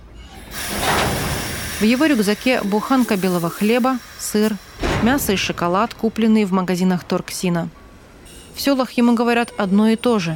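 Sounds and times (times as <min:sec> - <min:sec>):
train rumbling at a small railway station: 0:00.0 - 0:10.3
steam-like hiss of a train: 0:00.4 - 0:05.4
speech: 0:01.8 - 0:07.8, 0:08.6 - 0:10.3.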